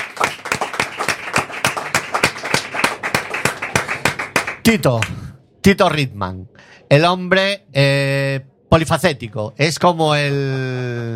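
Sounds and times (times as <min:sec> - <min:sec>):
people clapping: 0:00.0 - 0:05.2
speech: 0:04.7 - 0:11.1.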